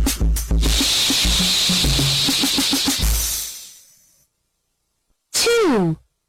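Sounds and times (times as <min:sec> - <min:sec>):
voice making a hissing S sound like a snake: 0:00.6 - 0:04.1
speech: 0:05.8 - 0:06.0.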